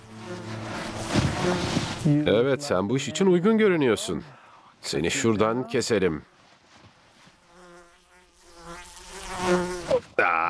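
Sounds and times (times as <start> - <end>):
fly buzzing near the ear: 0.0 - 2.7, 7.2 - 10.1
speech: 1.4 - 6.3.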